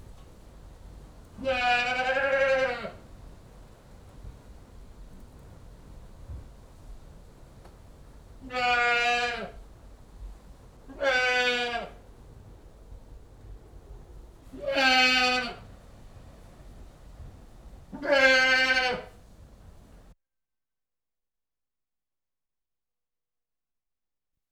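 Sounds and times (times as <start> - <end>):
Old English goat bleating: 1.4 - 2.9, 8.5 - 9.5, 10.9 - 12.0, 14.6 - 15.6, 18.0 - 19.1.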